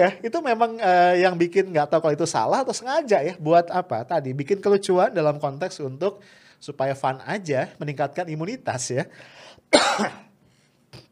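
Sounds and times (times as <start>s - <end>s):
speech: 0.0s - 10.2s
person coughing: 9.7s - 11.1s.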